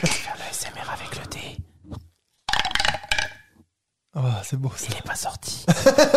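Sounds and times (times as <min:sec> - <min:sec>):
dice clattering down a dice tower: 0:02.5 - 0:03.5
speech: 0:04.5 - 0:06.1
laughter: 0:05.7 - 0:06.1.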